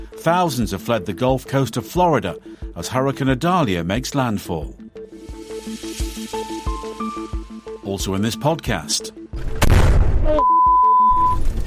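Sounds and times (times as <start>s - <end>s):
speech: 0.1s - 4.8s, 7.9s - 9.5s
grenade dropped from a drone exploding in front of a vehicle: 9.4s - 10.4s
high electronic beep tone: 10.3s - 11.4s.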